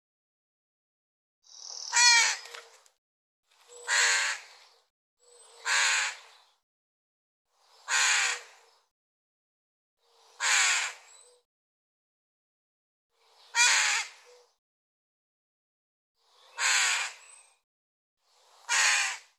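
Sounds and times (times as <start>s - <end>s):
bird giving harsh raspy caw calls: 1.7s - 2.6s, 3.7s - 4.5s, 5.6s - 6.2s, 7.9s - 8.5s, 10.4s - 11.4s, 13.5s - 14.4s, 16.5s - 17.2s, 18.7s - 19.3s.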